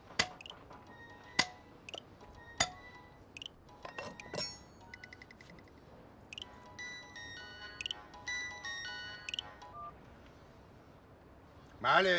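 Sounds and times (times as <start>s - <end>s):
mobile phone ringtone playing while a call is placed: 2.2s - 5.4s, 6.4s - 10.0s.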